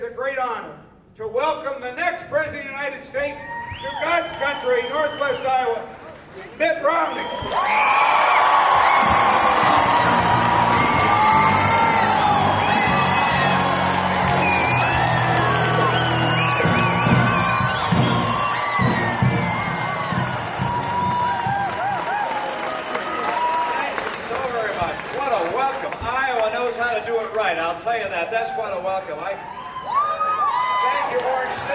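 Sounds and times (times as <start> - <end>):
speech: 1.2 - 8.3, 27.5 - 29.6, 31.1 - 31.7
large crowd cheering, whooping and applauding in a college gymnasium: 3.6 - 27.5, 28.3 - 31.7
band playing brass and drums in a gymnasium: 9.0 - 21.8.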